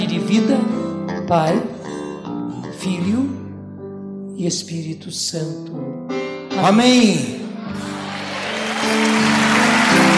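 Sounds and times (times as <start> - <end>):
speech: 0.3 - 1.8, 2.8 - 3.4, 4.4 - 7.9
audience applause at a Catholic religious gathering: 7.7 - 10.1.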